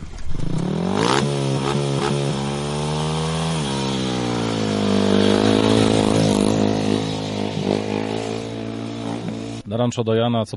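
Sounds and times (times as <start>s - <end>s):
speedway motorcycle engine roaring with throttle blips at a ranch: 0.0s - 9.7s
speech: 9.8s - 10.5s.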